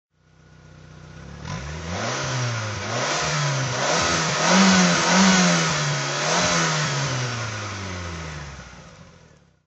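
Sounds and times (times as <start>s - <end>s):
1992 Lotus Elan SE engine throttle: 1.0s - 9.5s.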